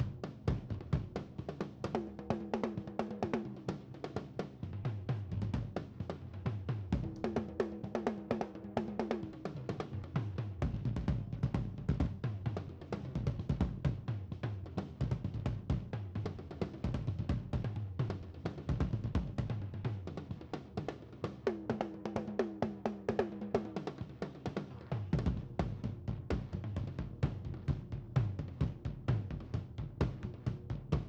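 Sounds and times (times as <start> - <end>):
tom drums playing a coda: 0.0 - 31.0.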